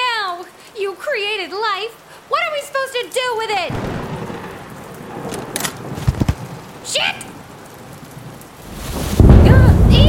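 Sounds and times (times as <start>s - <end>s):
heavy rain in a thunderstorm: 0.0s - 10.0s
wind in a thunderstorm: 0.0s - 10.0s
speech: 0.9s - 3.9s, 6.9s - 7.3s
deep thunder rumble: 3.7s - 10.0s.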